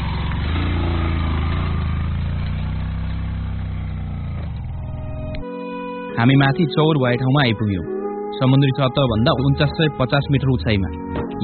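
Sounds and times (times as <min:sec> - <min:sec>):
motorcycle engine straining uphill carrying two riders: 0:00.0 - 0:05.4
speech: 0:06.2 - 0:11.4.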